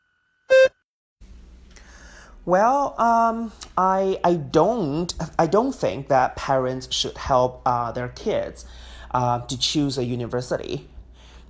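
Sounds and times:
electronic cue beep signaling a test-taker to begin speaking: 0:00.5 - 0:00.8
speech: 0:02.4 - 0:10.9.

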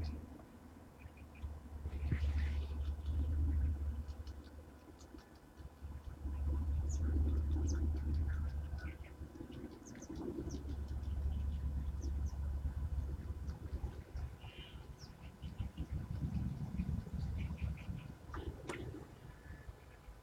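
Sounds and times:
birds chirping and trilling on the north bank of a river: 0:01.0 - 0:20.2
steady low rumble: 0:01.4 - 0:04.8, 0:05.8 - 0:19.6.

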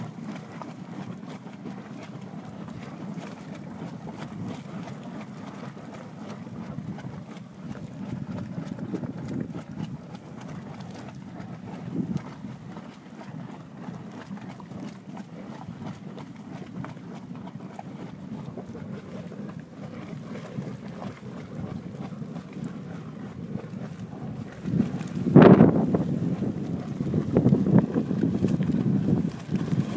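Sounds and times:
low rushing spring water in a black sand basin: 0:00.0 - 0:29.9
wind buffeting the microphone: 0:06.6 - 0:12.5, 0:19.9 - 0:29.9.

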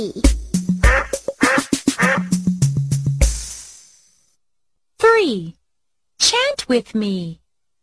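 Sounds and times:
speech: 0:00.0 - 0:00.4, 0:05.3 - 0:05.6, 0:06.3 - 0:07.4
duck quacking: 0:00.8 - 0:02.4.

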